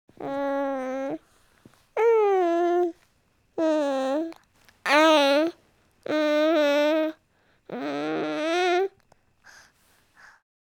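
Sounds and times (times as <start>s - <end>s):
baby moaning: 0.2s - 1.2s, 2.0s - 3.0s, 3.6s - 9.0s.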